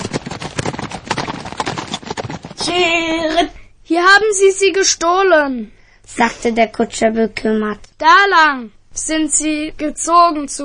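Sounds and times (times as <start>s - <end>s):
horses galloping at a furious pace into a forest: 0.0s - 3.2s
speech: 2.6s - 10.6s.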